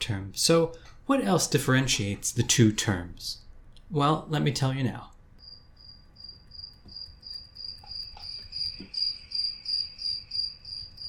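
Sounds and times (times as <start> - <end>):
speech: 0.1 - 5.1
crickets chirping: 5.4 - 11.0.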